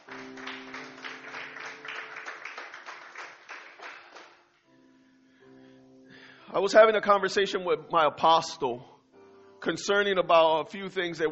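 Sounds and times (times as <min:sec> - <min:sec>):
audience applause: 0:00.0 - 0:04.4
speech: 0:06.5 - 0:08.9, 0:09.6 - 0:11.3.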